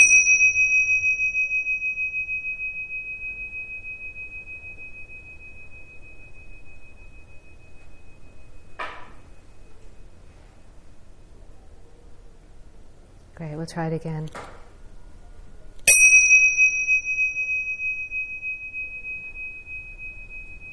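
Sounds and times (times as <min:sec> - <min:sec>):
meditation bell struck and ringing: 0:00.0 - 0:11.2, 0:15.8 - 0:20.7
speech: 0:13.4 - 0:14.5.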